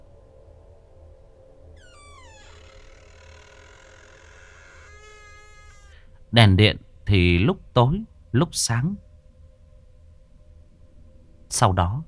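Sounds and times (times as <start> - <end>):
room door creaking open: 1.8 - 6.1
speech: 6.3 - 9.1, 11.6 - 12.0.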